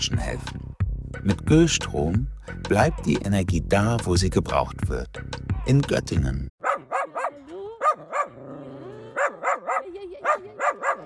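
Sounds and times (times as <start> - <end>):
speech: 0.0 - 0.6, 1.2 - 6.5
several dogs barking in an animal shelter: 6.6 - 11.0.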